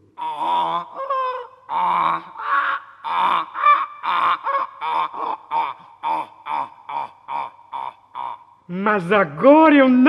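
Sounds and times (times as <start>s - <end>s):
donkey braying: 0.0s - 8.5s
speech: 8.8s - 10.0s.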